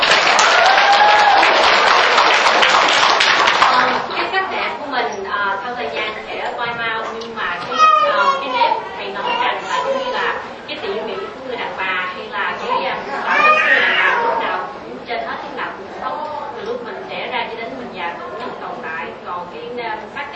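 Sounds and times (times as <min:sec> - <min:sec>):
audience applause for a woman who has stood up: 0:00.0 - 0:04.2
lively chatter: 0:00.0 - 0:20.3
children's voices: 0:02.7 - 0:04.8, 0:05.6 - 0:16.8.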